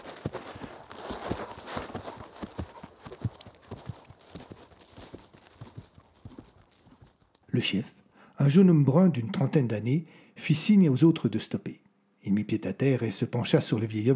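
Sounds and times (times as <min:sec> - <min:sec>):
hooves of several horses of a small group of riders clopping: 0:00.0 - 0:07.5
speech: 0:07.6 - 0:14.1.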